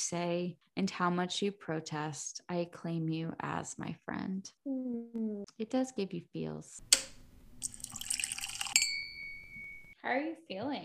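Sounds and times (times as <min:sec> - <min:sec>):
speech: 0:00.0 - 0:07.7, 0:10.0 - 0:10.8
water sloshing in a glass: 0:07.6 - 0:09.4
glass set down with a clear lingering ring: 0:08.8 - 0:10.0.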